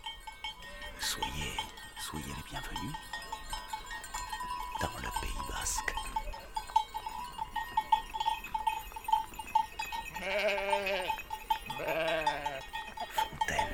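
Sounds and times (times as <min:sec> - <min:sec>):
small bells tinkling on moving sheep: 0:00.0 - 0:13.7
speech: 0:01.0 - 0:03.2, 0:04.8 - 0:06.5, 0:10.2 - 0:11.0
flock of sheep bleating: 0:10.1 - 0:12.7.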